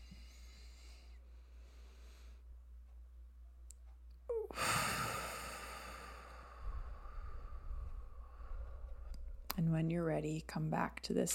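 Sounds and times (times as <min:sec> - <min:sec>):
deep breath during a guided relaxation exercise: 0:00.0 - 0:02.5, 0:04.3 - 0:09.4
speech: 0:09.7 - 0:11.3.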